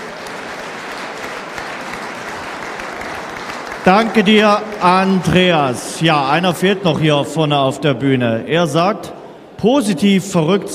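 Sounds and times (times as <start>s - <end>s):
large audience applauding: 0.0s - 5.9s
speech: 3.8s - 10.7s.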